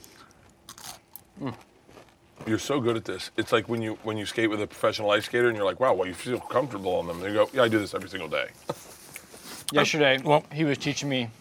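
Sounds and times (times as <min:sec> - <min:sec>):
crisp bite into a fried onion ring: 0:00.0 - 0:02.5
speech: 0:01.4 - 0:01.7, 0:02.5 - 0:08.8, 0:09.7 - 0:11.3.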